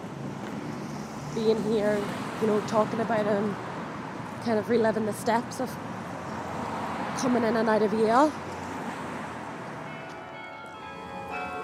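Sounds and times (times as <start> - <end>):
outdoor noise: 0.0 - 11.6
speech: 1.3 - 3.7, 4.4 - 5.9, 7.2 - 8.4
church bells tolling: 9.8 - 11.6.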